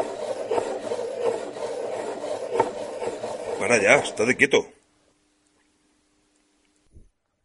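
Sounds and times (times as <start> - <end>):
gritty scraping dragging across a wooden surface: 0.0 - 4.4
speech: 3.6 - 4.8.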